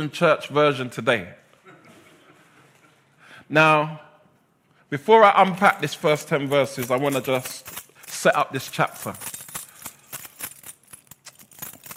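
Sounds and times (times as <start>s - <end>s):
speech: 0.0s - 1.4s, 3.5s - 4.1s, 4.9s - 9.3s
bunch of keys jangling: 5.6s - 11.9s.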